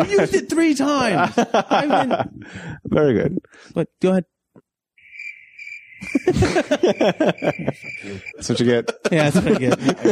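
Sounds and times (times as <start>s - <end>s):
speech: 0.0s - 4.3s, 6.0s - 10.1s
laughter: 1.0s - 2.4s, 6.0s - 10.1s
crickets chirping soundboard effect: 5.0s - 8.5s.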